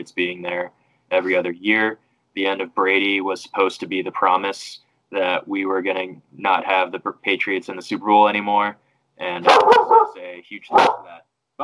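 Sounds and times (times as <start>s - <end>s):
speech: 0.0s - 11.6s
dog barking: 9.4s - 11.2s.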